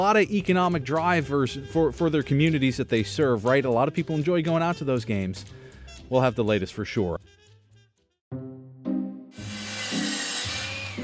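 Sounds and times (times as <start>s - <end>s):
speech: 0.0s - 7.2s
power tool biting into wood: 9.3s - 11.0s.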